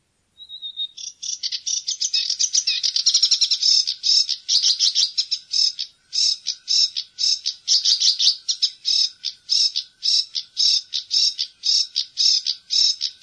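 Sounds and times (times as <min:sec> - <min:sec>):
sedge warbler singing grating chatters and trills: 0:00.4 - 0:13.2.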